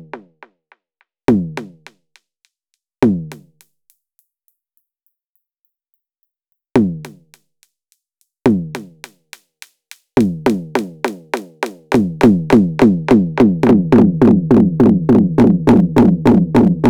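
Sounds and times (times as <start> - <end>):
drum machine with delay effect: 1.3 - 2.2, 6.8 - 7.4, 8.5 - 16.8.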